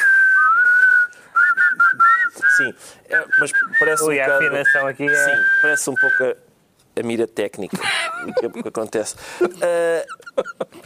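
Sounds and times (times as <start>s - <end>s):
person whistling a short melody: 0.0s - 6.2s
speech: 2.6s - 10.8s.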